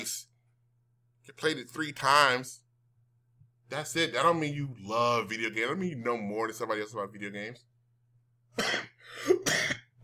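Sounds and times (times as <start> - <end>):
speech: 1.3 - 2.6, 3.7 - 7.7, 8.6 - 9.7
person coughing harshly: 8.6 - 10.0
raspy throat-clearing breath: 8.6 - 10.0.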